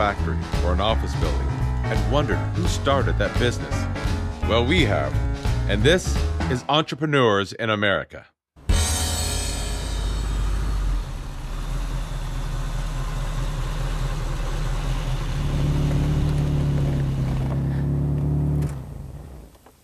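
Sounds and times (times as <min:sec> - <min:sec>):
speech: 0:00.0 - 0:08.3
1987 Ferrari 328 sports car engine droning while driving: 0:09.2 - 0:19.8.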